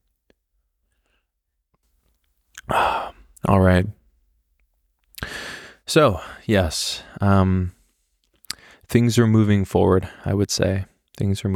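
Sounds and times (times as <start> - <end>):
person gulping coffee: 2.6 - 3.2
speech: 3.4 - 4.0, 5.9 - 7.8, 8.9 - 11.5.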